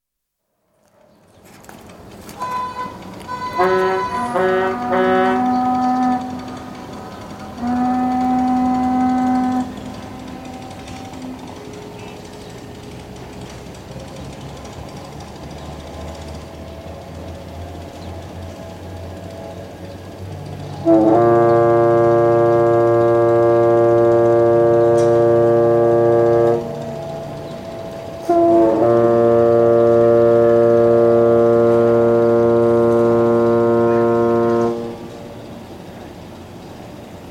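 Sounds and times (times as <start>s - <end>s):
boat hooters on the Yangtze river quayside in Wuhan China: 2.3s - 37.2s.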